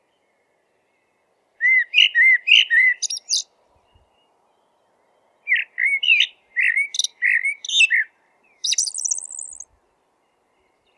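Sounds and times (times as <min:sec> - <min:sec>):
Eurasian blackbird singing: 0:01.6 - 0:04.9, 0:05.5 - 0:09.7, 0:10.5 - 0:10.9.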